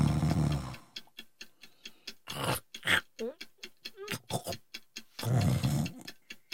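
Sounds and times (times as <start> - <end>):
person snoring loudly with rasping breaths: 0.0 - 0.8, 2.3 - 3.0, 5.2 - 6.1
clock ticking: 0.0 - 6.5.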